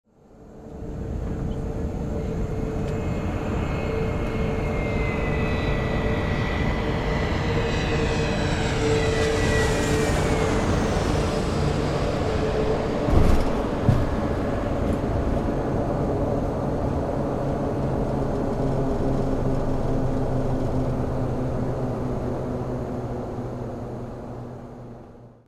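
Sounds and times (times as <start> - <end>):
airplane landing: 0.2 - 25.4.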